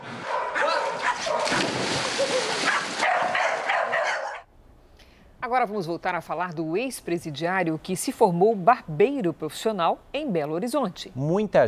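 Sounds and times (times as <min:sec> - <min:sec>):
several dogs barking and yipping: 0:00.0 - 0:04.5
dogs making high whining yelps: 0:00.2 - 0:01.6, 0:02.2 - 0:04.5
speech: 0:05.5 - 0:11.6.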